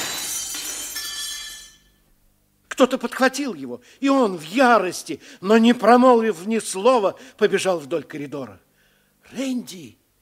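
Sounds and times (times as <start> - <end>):
glass pane of entrance door shattering: 0.0 - 1.9
speech: 2.8 - 8.6, 9.3 - 10.0.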